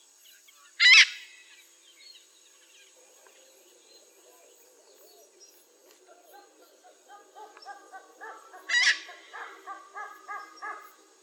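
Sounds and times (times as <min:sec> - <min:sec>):
Eclectus parrot screeching: 0:00.8 - 0:01.1, 0:08.7 - 0:09.3.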